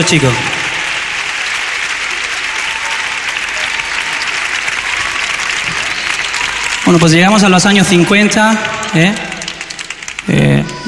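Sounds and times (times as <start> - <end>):
speech: 0.0 - 0.5, 6.9 - 9.3, 10.3 - 10.8
audience applause for a band: 0.0 - 10.8.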